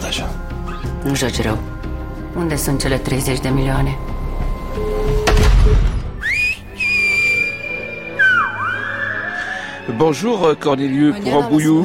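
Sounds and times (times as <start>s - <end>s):
speech: 1.0s - 4.1s, 9.9s - 11.8s
whistled tones in a whistled language: 4.8s - 10.0s.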